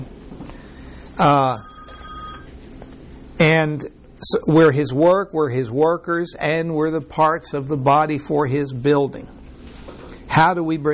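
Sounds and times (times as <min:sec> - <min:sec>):
speech: 0:01.2 - 0:01.7, 0:03.4 - 0:09.4, 0:10.4 - 0:10.9
electronic telephone ringing: 0:01.2 - 0:02.6.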